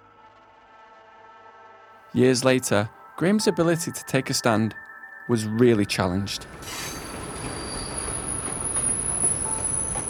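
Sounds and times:
speech: 2.1 - 7.0
train rumbling on rails: 6.3 - 10.0
train wheel squeal: 6.4 - 10.0.

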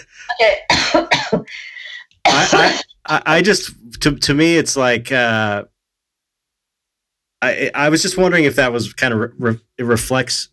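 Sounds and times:
speech: 0.0 - 1.7, 2.3 - 5.7, 7.4 - 10.5
person coughing harshly: 0.2 - 2.9.

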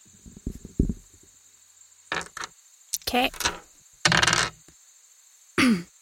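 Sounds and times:
percentile dice D100 clattering across a hard tabletop: 2.1 - 4.6
speech: 3.1 - 3.6.

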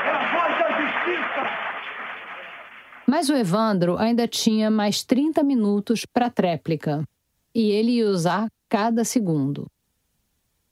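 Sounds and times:
crowd applause: 0.0 - 3.1
speech: 3.1 - 9.7.

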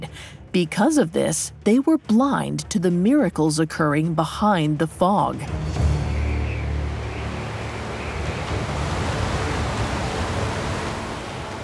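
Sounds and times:
speech: 0.5 - 5.8
churning sea: 5.0 - 11.6
strong wind rushing over open sea water: 6.1 - 11.6.

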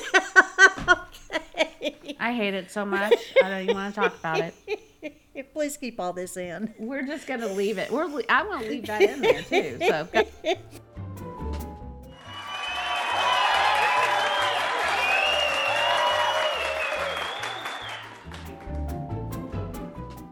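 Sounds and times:
laughter: 0.0 - 2.2, 2.9 - 5.5, 7.5 - 10.8
speech: 2.2 - 4.7, 5.6 - 10.8
crowd whooping: 12.1 - 18.4
crowd of fans applauding and cheering: 12.1 - 19.2.

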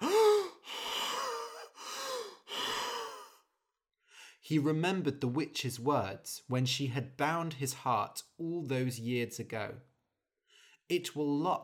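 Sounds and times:
heavy ragged breathing: 0.0 - 3.4
person gasping for air: 0.0 - 4.4
speech: 4.5 - 9.9, 10.9 - 11.6.

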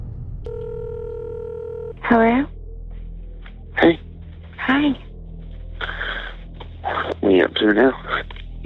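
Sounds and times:
telephone ringing tone on the line of a recorded phone call: 0.5 - 2.1
speech: 2.1 - 2.6, 3.8 - 4.0, 4.7 - 5.1, 7.6 - 8.3.

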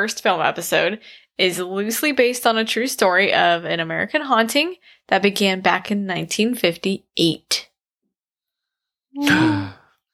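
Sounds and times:
speech: 0.0 - 7.7, 9.2 - 9.8
person gasping: 9.2 - 10.0.

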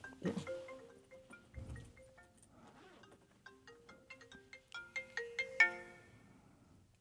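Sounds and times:
cell phone ringtone of bright melodic electronic tones: 0.0 - 6.2.

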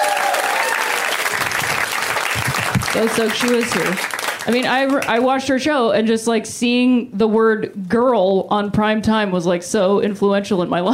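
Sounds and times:
audience at a live comedy show applauding: 0.0 - 5.3
speech: 3.0 - 10.9.

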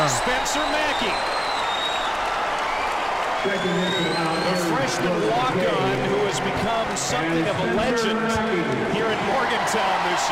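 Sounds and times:
whistles: 0.0 - 4.8
applause: 0.0 - 7.0, 8.6 - 10.3
big arena crowd cheering at a basketball game: 0.0 - 10.3
speech: 0.1 - 1.4, 3.4 - 4.3, 4.9 - 10.3.

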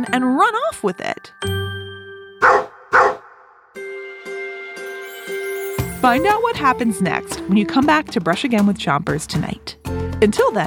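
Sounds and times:
speech: 0.0 - 1.5, 6.0 - 10.6
bright ringing chime tones: 0.0 - 2.4, 3.8 - 6.9
dog barking: 2.4 - 3.5.

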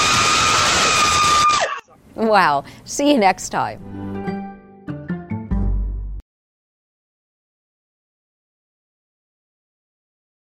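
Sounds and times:
woman screaming in fright: 0.0 - 2.0
speech: 2.2 - 4.3.

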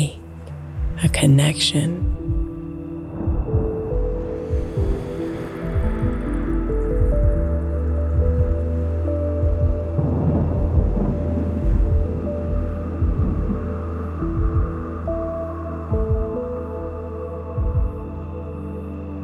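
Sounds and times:
sustained humming tonal drone: 0.0 - 19.2
speech: 1.0 - 2.4
deep low rumbles of hushed thunder: 2.0 - 17.0
steady rain shower: 2.0 - 18.5.

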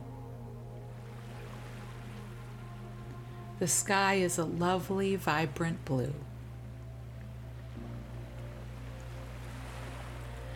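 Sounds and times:
low sustained hum: 0.0 - 10.5
ocean waves crashing onto the shore: 1.1 - 2.9, 8.6 - 10.5
speech: 3.6 - 6.3.

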